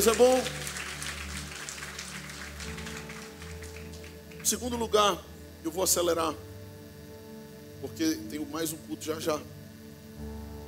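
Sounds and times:
speech: 0:00.0 - 0:00.6, 0:04.4 - 0:06.5, 0:07.8 - 0:09.6
church audience applause: 0:00.0 - 0:04.6.

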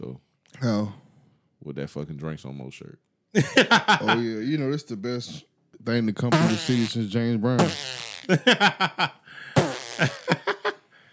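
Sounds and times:
speech: 0:00.6 - 0:01.0, 0:01.6 - 0:10.4
long sputtering fart: 0:06.3 - 0:07.0, 0:07.6 - 0:08.3, 0:09.6 - 0:10.3.

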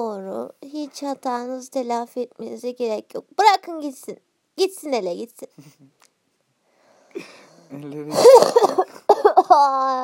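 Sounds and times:
speech: 0:00.0 - 0:06.0, 0:07.1 - 0:10.0
throaty voiced sounds: 0:07.2 - 0:08.9
harsh cough from a person recently recovered from an illness: 0:08.1 - 0:09.4.

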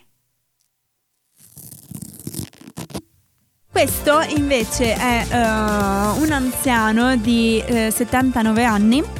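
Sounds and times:
bow tie strap being pulled off: 0:00.6 - 0:03.3
speech: 0:03.8 - 0:09.1.

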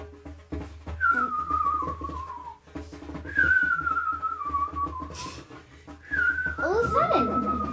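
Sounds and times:
drawn-out falling whistles imitating twittering birdsong: 0:01.0 - 0:02.6, 0:03.2 - 0:07.7.

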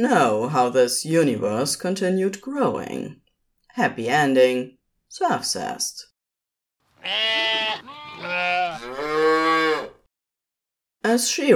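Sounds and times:
speech: 0:00.0 - 0:03.2, 0:03.8 - 0:06.1, 0:07.0 - 0:09.5, 0:11.0 - 0:11.5
cow mooing: 0:07.0 - 0:10.1.

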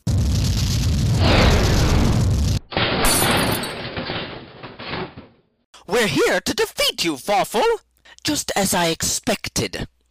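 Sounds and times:
barrel blast explosion in a video game: 0:00.1 - 0:03.6
rattling shattering burst: 0:00.1 - 0:05.6
speech: 0:06.0 - 0:09.9.

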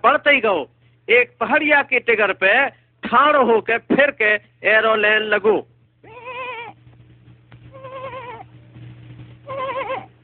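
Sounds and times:
speech: 0:00.0 - 0:05.7
low steady hum: 0:00.0 - 0:10.2
lost sheep bleating: 0:06.0 - 0:06.8, 0:07.7 - 0:08.5, 0:09.4 - 0:10.1.

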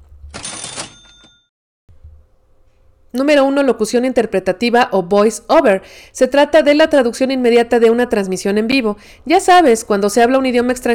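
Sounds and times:
cash register mechanical clatter and bell chime sound effect: 0:00.3 - 0:01.5
low steady hum: 0:01.9 - 0:10.9
speech: 0:03.1 - 0:10.9.

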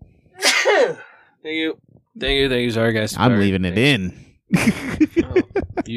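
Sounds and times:
loud sneeze: 0:00.4 - 0:01.0
speech: 0:00.8 - 0:05.9
laughter: 0:04.5 - 0:05.9.

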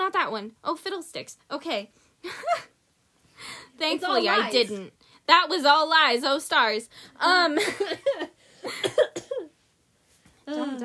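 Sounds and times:
speech: 0:00.2 - 0:02.8, 0:03.4 - 0:09.5, 0:10.5 - 0:10.8
person coughing: 0:08.6 - 0:09.5.

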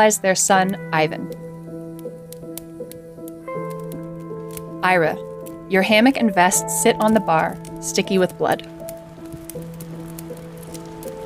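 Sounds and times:
speech: 0:00.0 - 0:01.5, 0:04.8 - 0:08.7
heavy rain falling on a dirt path: 0:08.6 - 0:11.2.

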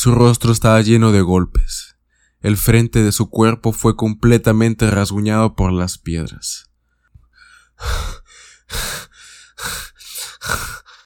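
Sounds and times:
speech: 0:00.0 - 0:06.7, 0:07.8 - 0:09.0, 0:09.6 - 0:09.8, 0:10.4 - 0:10.8
injured woman panting heavily while being dragged: 0:07.4 - 0:11.0.

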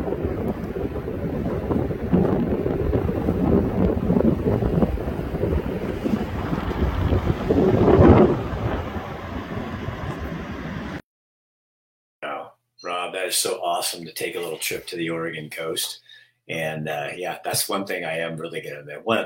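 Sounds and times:
strong wind blowing across an ocean beach on the Oregon coast: 0:00.0 - 0:11.0
speech: 0:13.3 - 0:19.2.

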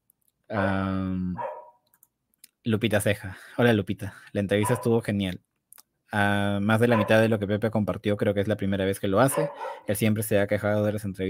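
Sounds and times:
speech: 0:00.5 - 0:01.5, 0:02.6 - 0:05.5, 0:06.1 - 0:11.2
small female dog giving a bark-like yelp and whine: 0:09.3 - 0:09.9.

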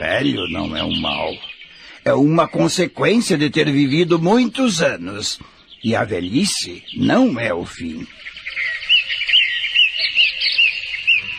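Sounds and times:
speech: 0:00.0 - 0:08.7
birds chirping in a dense chorus: 0:00.0 - 0:11.3.

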